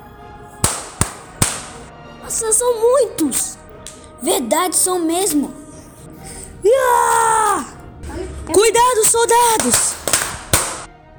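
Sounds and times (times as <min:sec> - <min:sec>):
sharp loud gunshot cracks: 0:00.6 - 0:01.9, 0:08.5 - 0:10.9
speech: 0:02.3 - 0:03.6, 0:04.2 - 0:05.6, 0:06.6 - 0:10.0.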